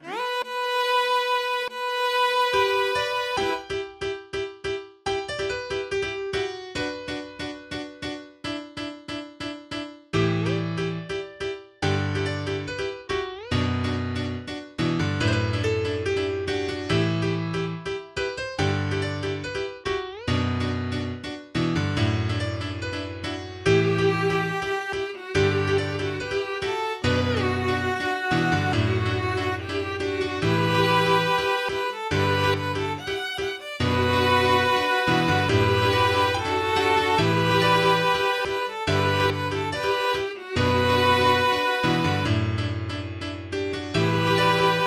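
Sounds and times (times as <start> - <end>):
viola: 0.0 - 3.9, 23.7 - 42.6, 43.9 - 44.8
piano: 0.0 - 44.8.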